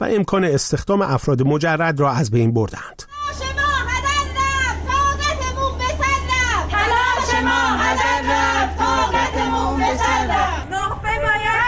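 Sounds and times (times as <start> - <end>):
speech: 0.0 - 3.2
continuous low hum: 3.1 - 11.3
crowd of protesters chanting in Tabriz over teacher hiring exam rules: 6.0 - 10.8.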